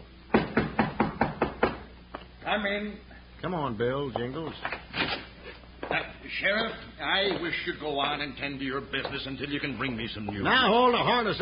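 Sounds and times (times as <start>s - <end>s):
knocking on the wooden door of an office in a bank: 0.3s - 1.9s
speech: 2.5s - 4.8s, 5.9s - 11.4s.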